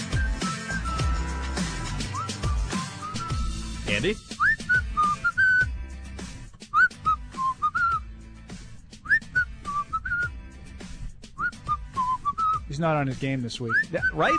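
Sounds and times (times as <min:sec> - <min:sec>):
person whistling a lilting tune: 0:00.0 - 0:03.7, 0:04.3 - 0:05.7, 0:06.7 - 0:08.1, 0:09.0 - 0:10.4, 0:11.4 - 0:12.7, 0:13.7 - 0:14.3
speech: 0:03.9 - 0:04.4, 0:12.8 - 0:14.3.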